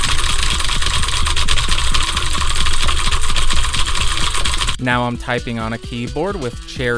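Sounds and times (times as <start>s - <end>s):
typing on a clicky mechanical keyboard with Cherry MX Blue switches: 0.0s - 4.8s
person talking: 4.8s - 6.9s.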